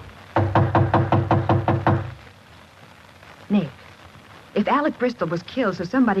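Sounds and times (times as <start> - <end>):
knocking on a partly open apartment door: 0.4 - 2.2
speech: 3.5 - 3.8, 4.6 - 6.1.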